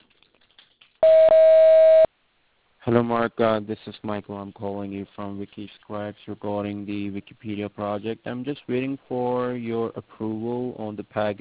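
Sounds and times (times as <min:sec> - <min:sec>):
voicemail recording tone beep: 0:01.0 - 0:02.1
speech: 0:02.8 - 0:11.4.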